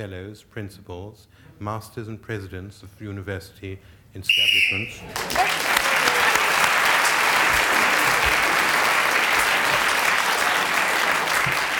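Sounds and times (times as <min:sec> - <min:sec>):
speech: 0:00.0 - 0:05.8
large audience applauding: 0:05.1 - 0:11.7.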